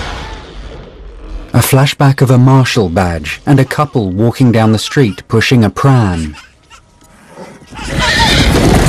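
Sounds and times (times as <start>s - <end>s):
speech: 1.6s - 6.5s
horses neighing: 6.1s - 8.8s.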